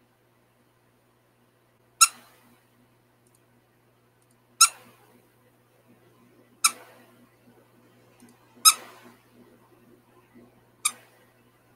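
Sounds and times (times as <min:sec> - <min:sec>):
squeaky pig toy squeaks: 0:02.0 - 0:02.3, 0:04.6 - 0:04.9, 0:08.6 - 0:08.9.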